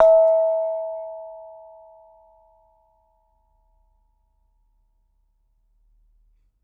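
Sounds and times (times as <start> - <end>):
gamelan: 0.0 - 2.1.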